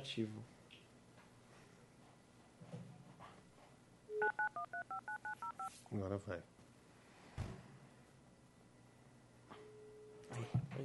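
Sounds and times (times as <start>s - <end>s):
speech: 0.0s - 0.6s, 4.8s - 6.6s, 10.3s - 10.8s
telephone keypad dialing tones: 4.1s - 5.7s.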